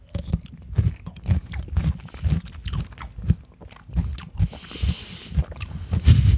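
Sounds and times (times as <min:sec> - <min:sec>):
person biting and chewing a crisp salt-dill pickle: 0:00.0 - 0:06.3.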